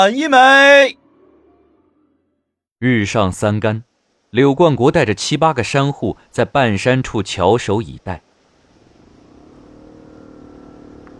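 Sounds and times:
speech: 0.0s - 1.0s, 2.8s - 8.3s
large-displacement motorcycle engine roaring: 8.5s - 11.1s.

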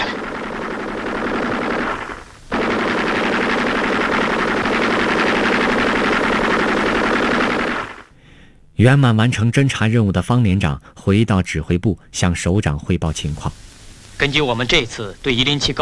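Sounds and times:
rapid machine-gun fire from enemies shooting wildly at a hill position: 0.0s - 8.2s
speech: 8.8s - 15.8s.

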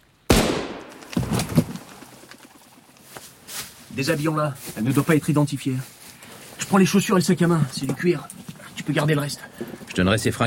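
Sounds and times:
gunshot fired in a wood: 0.3s - 1.6s
speech: 4.0s - 6.0s, 6.6s - 10.4s.

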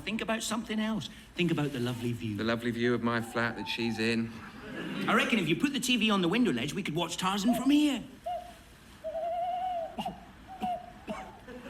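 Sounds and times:
hiss: 0.0s - 11.6s
speech: 0.1s - 8.2s
owl hooting: 7.4s - 11.4s.

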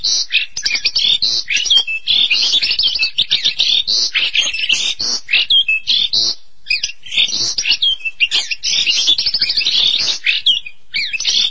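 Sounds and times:
starling or myna singing: 0.0s - 11.5s.

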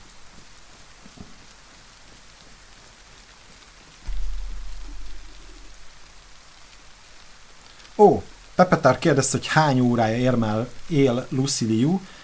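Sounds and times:
steady rain falling in a video game: 0.0s - 12.2s
deeper low rumble in a video game: 4.0s - 6.6s
speech: 8.0s - 12.2s.

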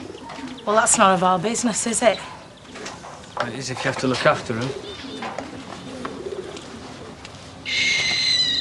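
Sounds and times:
speech: 0.7s - 2.4s, 3.4s - 5.1s
little owl hooting: 4.8s - 8.5s.

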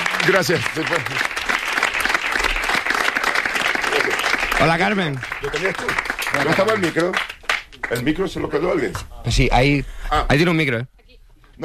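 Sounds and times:
audience applause welcoming a guest at a Spanish radio event on New Year's Eve: 0.0s - 8.1s
speech: 0.2s - 1.4s, 4.6s - 7.3s, 7.9s - 11.0s.

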